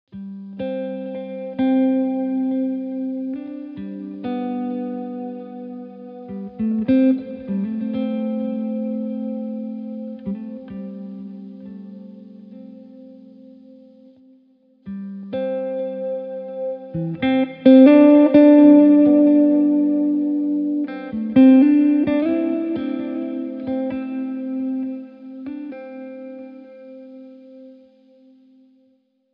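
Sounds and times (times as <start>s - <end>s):
guitar music: 0.1s - 28.9s.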